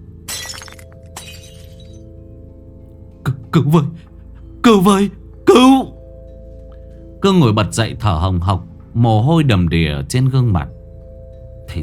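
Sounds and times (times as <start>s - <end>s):
ceramic teapot knocked off a table shattering: 0.3s - 2.0s
scattered tinkling ceramic fragments: 0.3s - 2.0s
speech: 3.6s - 4.0s, 4.6s - 5.9s, 7.2s - 10.8s, 11.7s - 11.8s.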